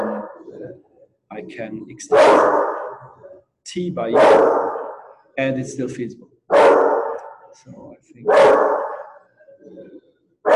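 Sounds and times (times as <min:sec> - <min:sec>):
speech: 0:00.7 - 0:04.8, 0:05.4 - 0:06.3, 0:07.6 - 0:08.8, 0:09.7 - 0:10.0
dog barking: 0:02.1 - 0:03.1, 0:04.1 - 0:05.1, 0:06.5 - 0:07.5, 0:08.2 - 0:09.3.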